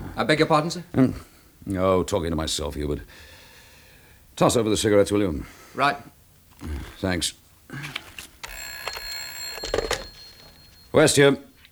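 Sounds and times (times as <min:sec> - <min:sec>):
speech: 0:00.2 - 0:03.3, 0:04.4 - 0:08.1, 0:10.9 - 0:11.5
clattering knocks: 0:08.4 - 0:11.2
telephone bell ringing: 0:08.4 - 0:11.7.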